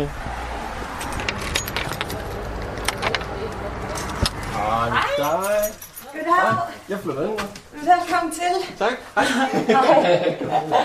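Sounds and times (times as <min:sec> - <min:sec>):
speech: 0:00.0 - 0:00.2, 0:04.7 - 0:10.8
keys jangling at the front door of a shared house: 0:01.0 - 0:03.3, 0:05.1 - 0:06.2
laughter: 0:09.2 - 0:10.8.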